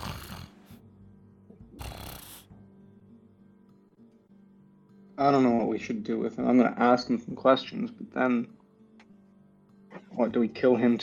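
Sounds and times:
person snoring: 0:00.0 - 0:00.8, 0:01.8 - 0:02.5
speech: 0:05.2 - 0:08.6, 0:10.2 - 0:11.0.

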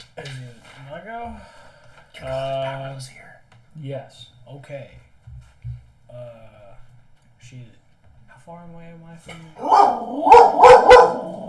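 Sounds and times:
speech: 0:00.2 - 0:05.1, 0:06.1 - 0:06.6, 0:07.4 - 0:07.8, 0:08.4 - 0:11.4
dog barking: 0:09.6 - 0:11.4.

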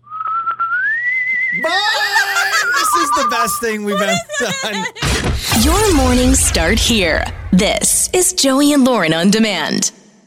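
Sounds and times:
person whistling a short goodbye tune: 0:00.0 - 0:04.2
laughter: 0:01.5 - 0:05.8
speech: 0:01.6 - 0:01.9, 0:03.3 - 0:10.0.

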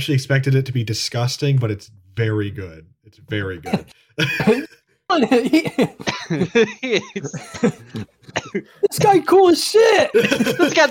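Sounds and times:
speech: 0:00.0 - 0:10.8
person coughing harshly: 0:03.6 - 0:06.5, 0:07.2 - 0:09.3
laughter: 0:03.7 - 0:10.8.

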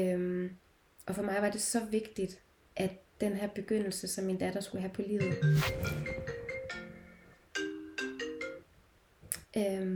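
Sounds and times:
speech: 0:00.0 - 0:06.0
mobile phone ringtone playing a bright electronic melody of stepped tones: 0:05.2 - 0:08.6.

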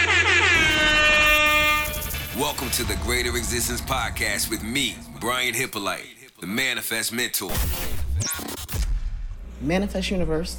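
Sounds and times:
air horn sound effect blaring: 0:00.0 - 0:02.6
speech: 0:02.5 - 0:08.4, 0:09.6 - 0:10.5.

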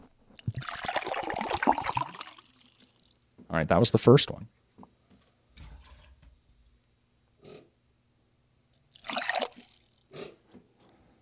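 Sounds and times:
water pouring: 0:00.4 - 0:03.2, 0:08.9 - 0:10.0
speech: 0:03.6 - 0:04.6.

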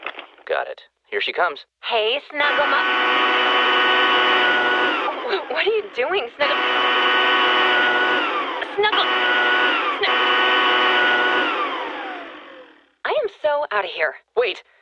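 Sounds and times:
speech: 0:00.5 - 0:03.7, 0:05.3 - 0:07.3, 0:13.4 - 0:14.8
200 mile per hour cordless leaf blower running: 0:02.5 - 0:13.0.

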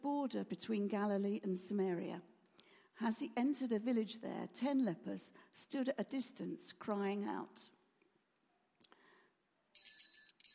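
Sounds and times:
speech: 0:00.0 - 0:02.3, 0:03.0 - 0:07.8
hand bells ringing: 0:09.8 - 0:10.5
sharp metallic clinks: 0:09.8 - 0:10.5.

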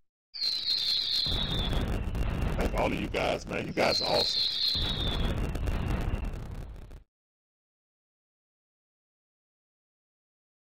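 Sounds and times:
high firework whistle dropping in pitch: 0:00.4 - 0:07.0
speech: 0:02.8 - 0:05.4.

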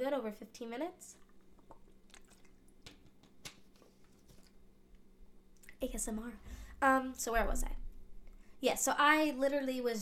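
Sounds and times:
speech: 0:00.0 - 0:01.2, 0:05.8 - 0:07.8, 0:08.6 - 0:09.9
faint hum: 0:00.0 - 0:09.9
person sipping water during a break: 0:01.2 - 0:03.0.

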